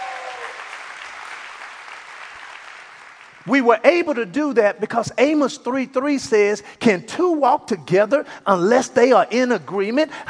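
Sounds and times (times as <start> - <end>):
congregation clapping: 0.0 - 3.6
speech: 3.4 - 10.2.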